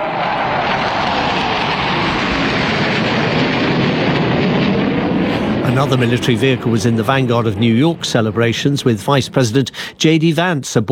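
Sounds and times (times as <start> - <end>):
F-15 and F-16 fighter jets flying past overhead over Washington: 0.0 - 10.6
speech: 5.8 - 10.9.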